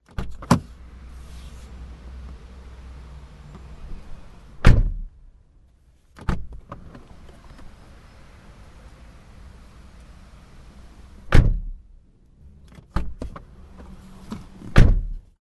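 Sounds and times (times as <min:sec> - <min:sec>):
car doors: 0:00.1 - 0:00.8, 0:03.5 - 0:05.2, 0:06.1 - 0:08.4, 0:11.0 - 0:11.9, 0:12.6 - 0:15.3.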